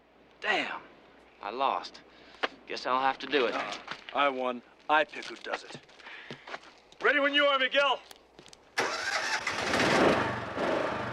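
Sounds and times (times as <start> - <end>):
speech: 0.4 - 8.2
tractor engine cranking, starting and running as the tractor trundles off: 8.8 - 11.1.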